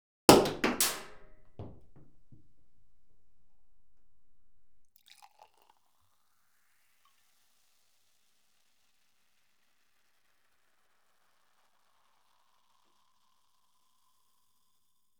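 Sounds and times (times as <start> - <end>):
sparkling wine cork popping: 0.3 - 4.8
sparkling wine pouring: 4.9 - 6.1.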